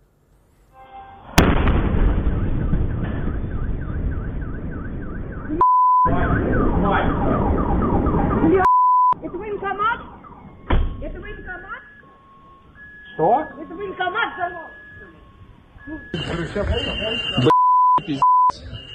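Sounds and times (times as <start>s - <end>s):
powerful explosion at a factory: 1.4s - 8.4s
car alarms wailing: 2.2s - 18.9s
brief beep tones: 4.8s - 6.7s, 8.6s - 9.4s, 10.0s - 18.9s
speech: 15.9s - 17.5s, 18.1s - 18.3s.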